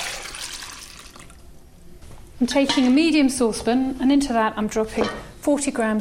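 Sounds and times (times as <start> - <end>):
warm milk pouring into a bowl: 0.0 - 1.4
speech: 2.4 - 5.9.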